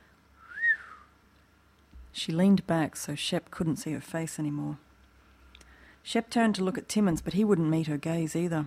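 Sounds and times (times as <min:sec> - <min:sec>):
impressed human whistle: 0:00.4 - 0:01.1
speech: 0:02.2 - 0:04.8, 0:06.1 - 0:08.6.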